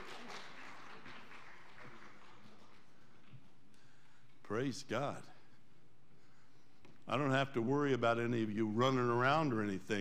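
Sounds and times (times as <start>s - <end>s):
crowd applauding: 0.0s - 2.8s
speech: 4.5s - 5.4s, 7.1s - 9.9s.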